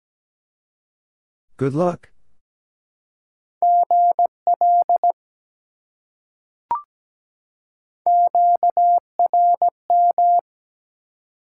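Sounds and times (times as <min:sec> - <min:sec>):
speech: 0:01.6 - 0:02.1
steady single-pitch Morse code beeps in dots and dashes: 0:03.6 - 0:05.1, 0:08.1 - 0:10.4.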